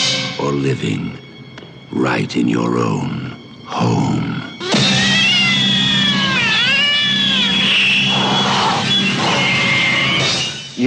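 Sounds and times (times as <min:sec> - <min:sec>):
speech: 0:00.5 - 0:01.3, 0:01.9 - 0:04.5
cat yowling: 0:04.6 - 0:10.6.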